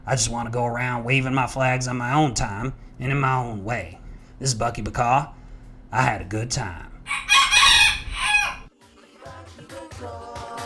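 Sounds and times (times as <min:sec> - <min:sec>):
speech: 0:00.0 - 0:07.4
rooster crowing: 0:07.1 - 0:08.7.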